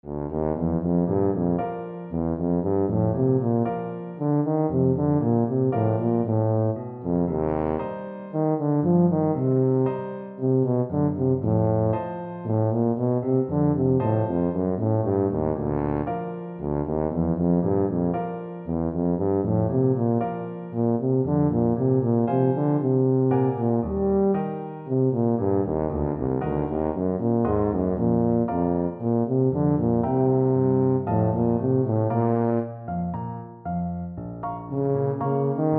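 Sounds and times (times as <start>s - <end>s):
tuba: 0.0s - 35.7s.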